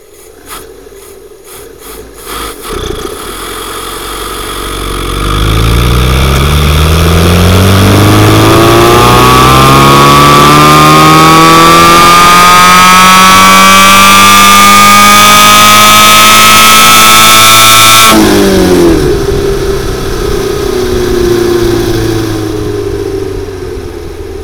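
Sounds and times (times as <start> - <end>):
vehicle accelerating from 0 to 100 in second gear: 1.8 - 24.4.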